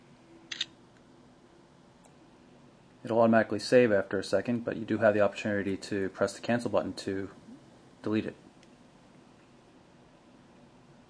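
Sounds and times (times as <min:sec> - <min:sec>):
faint humming background: 0:00.0 - 0:11.0
phone camera shutter double-click: 0:00.5 - 0:00.8
speech: 0:03.0 - 0:07.4, 0:08.0 - 0:08.4.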